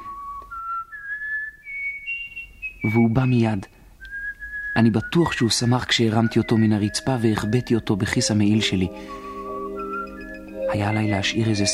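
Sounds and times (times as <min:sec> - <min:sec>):
person whistling a slow rising tune to call a pet: 0:00.0 - 0:11.7
speech: 0:02.8 - 0:03.8, 0:04.8 - 0:09.2, 0:10.7 - 0:11.7.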